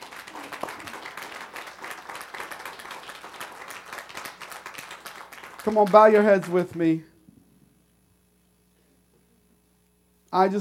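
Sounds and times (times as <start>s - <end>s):
audience clapping: 0.0s - 7.0s
speech: 5.6s - 7.1s, 10.4s - 10.5s.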